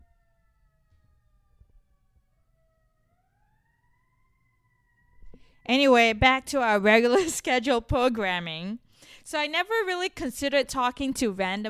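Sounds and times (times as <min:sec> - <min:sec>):
distant ambulance siren wailing: 0:00.0 - 0:07.5
speech: 0:05.6 - 0:11.6.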